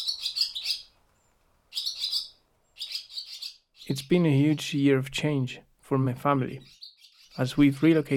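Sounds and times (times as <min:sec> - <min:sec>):
barn swallows twittering inside a barn: 0:00.0 - 0:00.9, 0:01.7 - 0:04.6, 0:06.6 - 0:08.1
speech: 0:03.9 - 0:06.8, 0:07.4 - 0:08.1.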